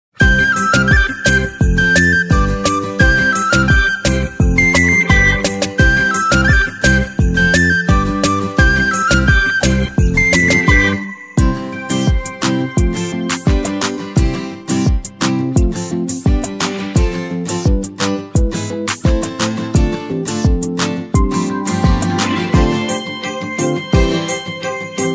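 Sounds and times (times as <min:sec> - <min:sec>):
instrumental karaoke version of a song: 0:00.2 - 0:25.1.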